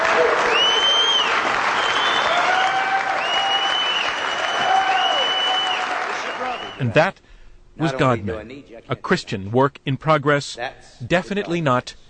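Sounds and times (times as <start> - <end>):
whistles and cheering: 0.0 - 6.8
large crowd standing ovation applause at an event in Franklin Tennessee: 0.0 - 6.9
speech: 6.8 - 12.0.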